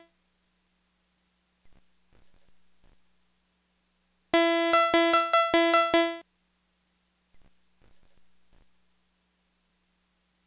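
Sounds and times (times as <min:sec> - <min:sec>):
synth in E minor: 0:04.4 - 0:06.2.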